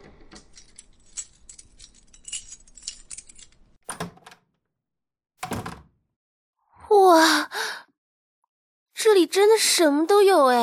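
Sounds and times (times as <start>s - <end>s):
bunch of keys jangling: 0.3s - 4.1s
speech: 9.2s - 10.6s.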